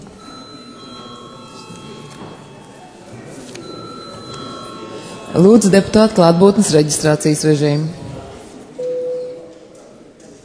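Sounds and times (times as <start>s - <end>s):
parliamentary session electric bell ringing: 0.2s - 6.4s
speech: 5.4s - 8.0s.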